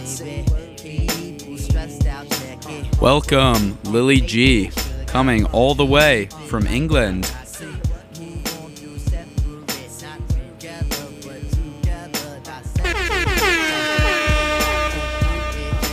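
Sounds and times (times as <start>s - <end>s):
speech: 0.1s - 1.2s, 1.8s - 7.4s
thumping beat: 3.0s - 9.6s, 12.8s - 15.9s
DJ-style air horn blasting over music: 12.8s - 15.9s.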